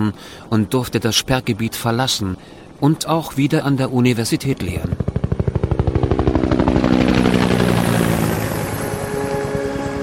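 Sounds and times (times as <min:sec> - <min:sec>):
speech: 0:00.1 - 0:05.1
helicopter flying over the Atlantic, rotor chopping: 0:02.8 - 0:10.0.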